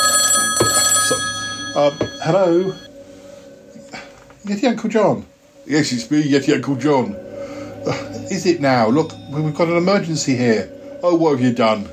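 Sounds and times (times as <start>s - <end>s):
telephone ringing with bright electronic tone: 0.0s - 2.9s
speech: 1.8s - 2.9s, 4.4s - 11.9s.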